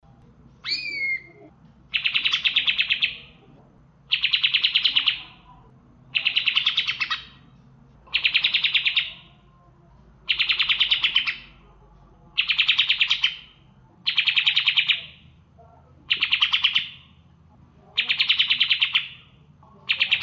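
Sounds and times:
cucak ijo singing with ciblek song fill: 0.6s - 3.4s, 4.1s - 5.4s, 6.1s - 7.4s, 8.1s - 9.3s, 10.3s - 11.6s, 12.4s - 15.3s, 16.1s - 17.1s, 18.0s - 19.3s, 19.9s - 20.2s.

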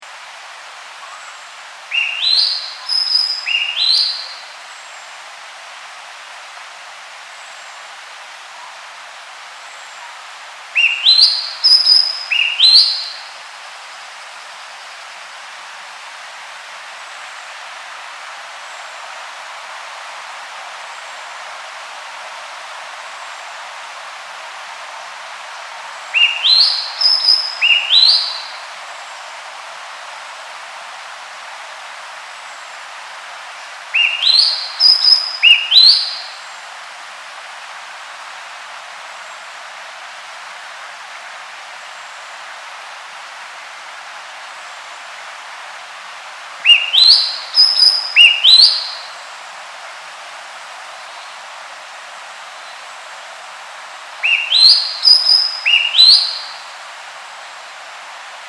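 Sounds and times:
Cissa thalassina bird calling: 1.0s - 4.6s, 10.7s - 13.4s, 26.0s - 28.6s, 33.9s - 36.5s, 46.6s - 49.2s, 54.2s - 56.8s.

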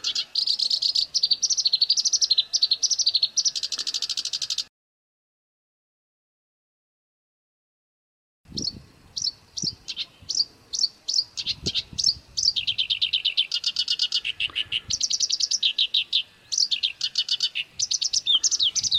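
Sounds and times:
black-browed reed warbler singing a busy varied song: 0.0s - 4.7s, 8.5s - 18.9s.

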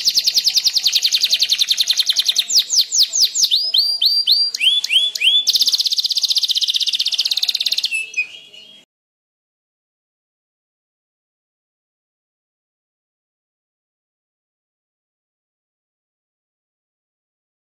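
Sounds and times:
canary singing standard canary song type: 0.0s - 8.8s.

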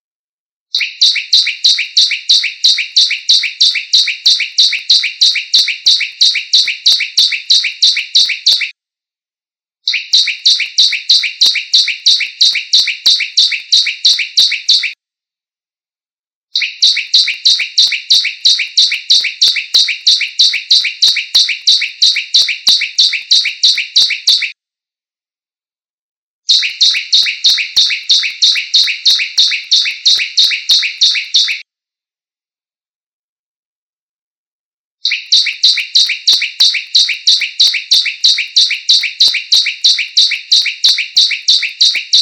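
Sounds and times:
ciblek bird singing: 0.7s - 8.7s, 9.9s - 15.0s, 16.6s - 24.5s, 26.5s - 31.6s, 35.0s - 42.2s.

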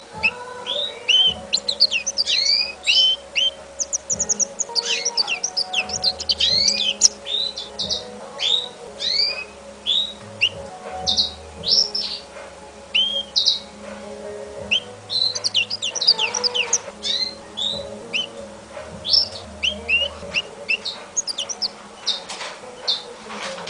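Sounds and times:
African citril call: 0.0s - 23.6s.

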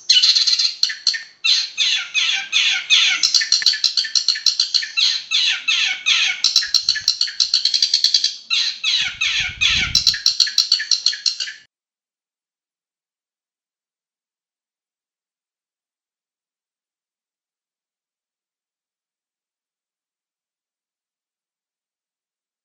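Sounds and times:
long-tailed shrike song of harsh grating notes: 0.0s - 11.7s.

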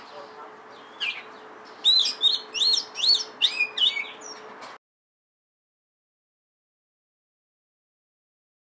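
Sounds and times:
Oriental magpie-robin singing looping whistled notes and chirps: 0.8s - 4.4s.

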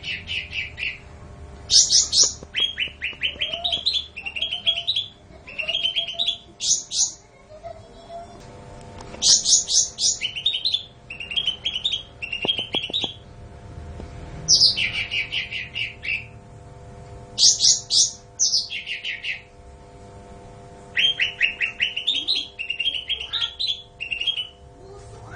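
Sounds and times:
bulbul singing bright descending phrases: 0.0s - 7.3s, 9.2s - 13.4s, 14.4s - 16.4s, 17.3s - 19.6s, 20.9s - 24.7s.

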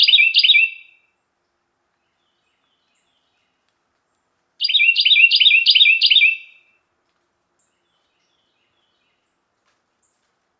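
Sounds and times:
Carolina wren singing: 0.0s - 0.8s, 4.6s - 6.5s.

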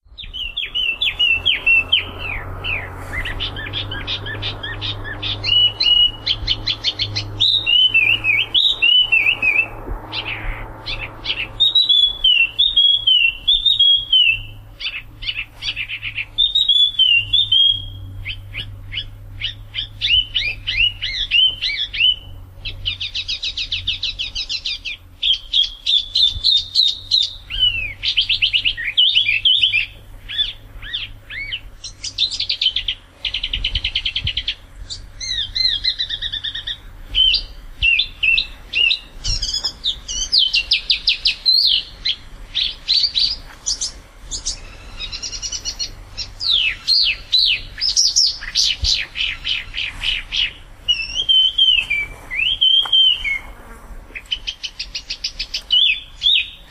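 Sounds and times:
spot-throated babbler: 0.0s - 56.7s.

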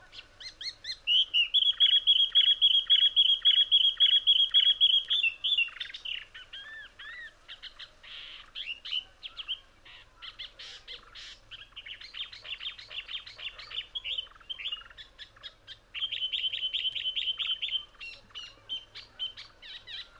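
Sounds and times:
spiny babbler: 0.0s - 20.1s.

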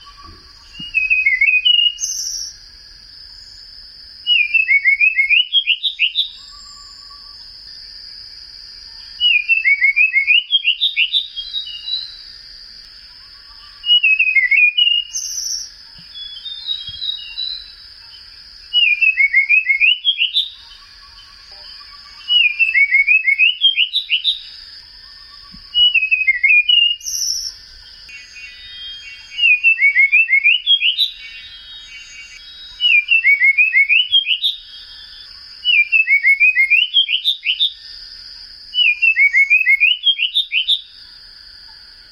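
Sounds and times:
light blue flycatcher: 0.0s - 41.4s.

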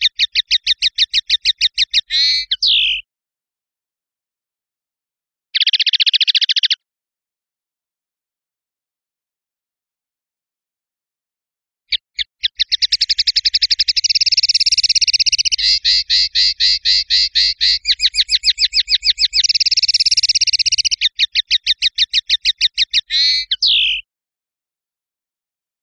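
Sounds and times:
European goldfinch singing: 0.0s - 3.0s, 5.6s - 6.8s, 11.9s - 24.0s.

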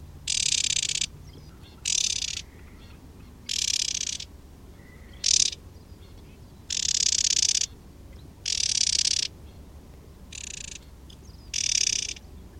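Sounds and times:
white-eye alarm call: 0.3s - 7.8s, 8.4s - 9.4s, 10.3s - 12.3s.

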